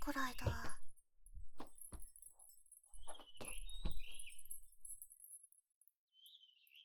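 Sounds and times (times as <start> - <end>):
speech: 0.0 - 0.7
birds chirping: 3.0 - 4.6.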